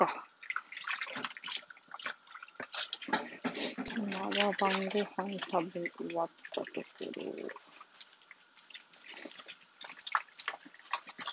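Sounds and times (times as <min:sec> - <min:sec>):
water running from a tap while dishes are washed: 0:00.0 - 0:11.3
speech: 0:04.4 - 0:07.6.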